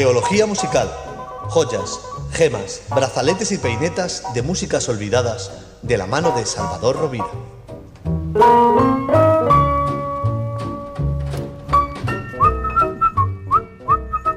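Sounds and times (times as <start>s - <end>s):
speech: 0.0s - 7.6s, 8.4s - 9.2s
instrumental accompaniment with a steady beat: 7.5s - 14.3s
man whistling a song melody: 12.2s - 14.3s.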